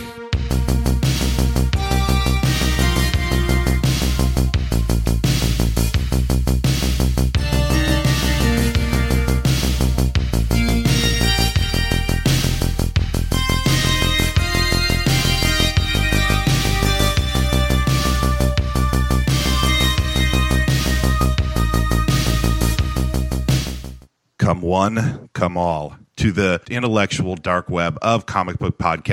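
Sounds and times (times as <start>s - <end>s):
loud full-band intro theme tune: 0.0s - 6.1s, 6.7s - 23.8s
speech: 24.8s - 29.1s.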